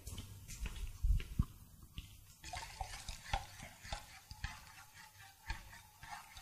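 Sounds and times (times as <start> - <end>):
stirring a hot fuming lye solution: 1.4 - 6.4.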